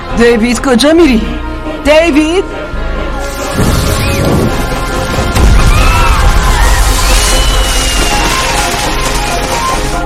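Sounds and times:
speech: 0.2s - 2.6s
fireworks exploding with booming bursts: 3.5s - 10.0s.

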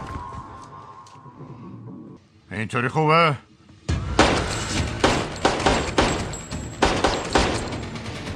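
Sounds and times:
speech: 2.6s - 3.5s
loud gunshots fired at doors and walls: 4.1s - 7.9s.

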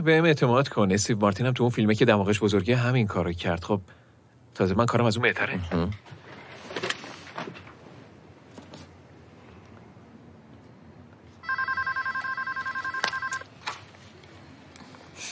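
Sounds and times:
speech: 0.0s - 4.0s, 4.6s - 6.2s
faint clatter and handling noises: 5.7s - 9.0s, 12.9s - 15.3s
telephone ringing with rapid trilling pulses: 11.4s - 13.5s.

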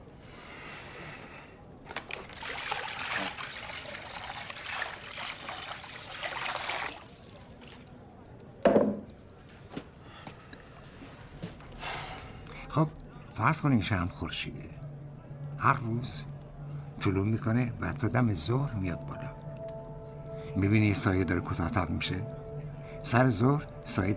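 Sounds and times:
water trickling and pouring: 1.9s - 8.1s
small drips and knocks: 1.9s - 9.2s
speech: 12.8s - 14.8s, 15.6s - 16.3s, 17.0s - 19.4s, 20.6s - 22.4s, 23.0s - 24.1s.

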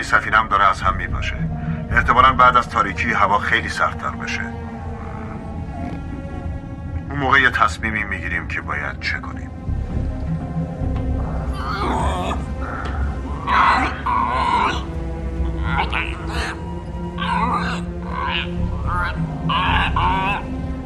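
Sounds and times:
speech: 0.1s - 4.6s, 7.2s - 9.7s, 17.3s - 20.6s
frog croaking: 1.4s - 7.1s, 10.2s - 20.8s.

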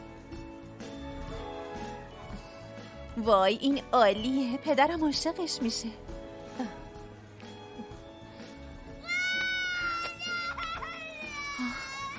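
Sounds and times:
speech: 3.2s - 6.8s
young child wailing: 9.0s - 12.1s.

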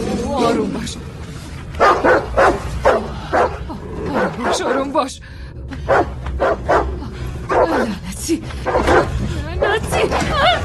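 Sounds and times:
speech: 0.4s - 1.1s, 4.6s - 6.1s, 8.3s - 10.6s
dog barking: 1.8s - 3.6s, 5.9s - 6.9s, 7.5s - 7.9s, 8.6s - 9.1s.

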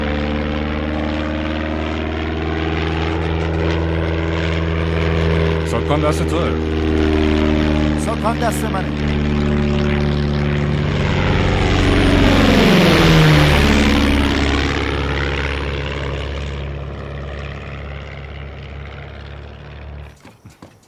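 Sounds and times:
Super Cub propeller airplane engine used for crop spraying: 0.0s - 20.8s
speech: 5.9s - 7.3s, 8.2s - 9.4s.

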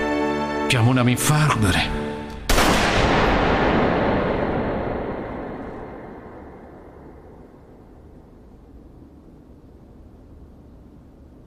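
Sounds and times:
speech: 0.7s - 2.1s
dense roaring wash of gunfire and echo: 2.3s - 8.0s
loud gunshot crack: 2.5s - 6.4s.

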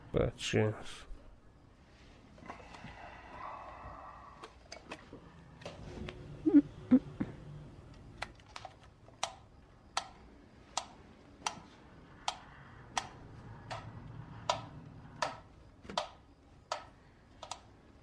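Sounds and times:
faint low noise: 0.0s - 18.0s
clock ticking in a quiet room: 10.8s - 17.6s.

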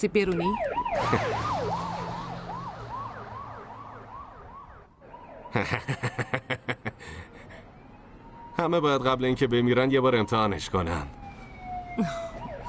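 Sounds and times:
speech: 0.0s - 1.9s, 5.5s - 7.4s, 8.6s - 11.2s, 12.0s - 12.3s
vehicle siren wailing: 0.2s - 5.7s, 7.3s - 12.6s
vehicle siren rapid choppy pulsing tone: 0.4s - 5.6s
laughter: 1.0s - 1.6s, 5.6s - 7.2s.

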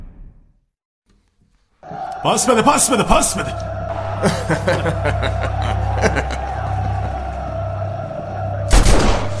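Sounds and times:
speech: 2.2s - 6.5s
laughter: 3.8s - 8.0s
gunshots: 8.7s - 9.3s.

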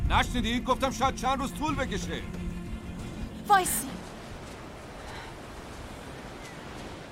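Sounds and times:
speech: 0.2s - 2.4s, 3.5s - 3.9s
flowing water: 3.0s - 7.0s.

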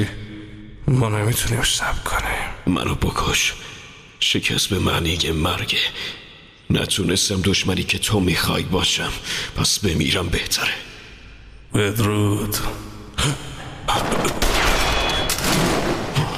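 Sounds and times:
speech: 0.0s - 0.2s, 0.9s - 10.9s, 11.7s - 14.4s
gunfire fusillade of overlapping shots: 14.0s - 16.2s.

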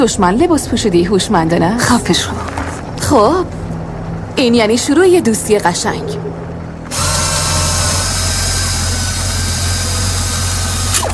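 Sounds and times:
speech: 0.0s - 2.5s, 3.1s - 3.6s, 4.4s - 7.0s
repaired engine starting and running with a whining tone: 5.7s - 11.1s.

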